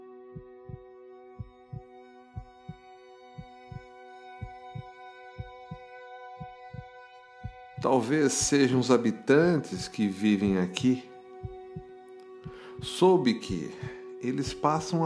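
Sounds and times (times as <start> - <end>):
soft steady heartbeat: 0.3 - 8.7, 11.4 - 14.9
speech: 7.8 - 11.1, 12.9 - 15.0.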